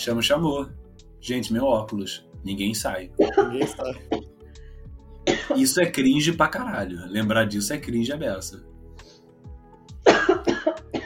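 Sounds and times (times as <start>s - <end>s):
speech: 0.0s - 4.2s, 5.5s - 8.7s
woman lying down coughing: 3.2s - 4.3s, 5.3s - 5.6s, 10.1s - 11.0s.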